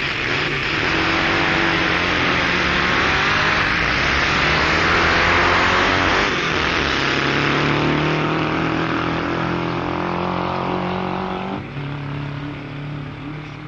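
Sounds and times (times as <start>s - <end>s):
drag racing cars roaring as they accelerate down a dragway: 0.0s - 13.6s.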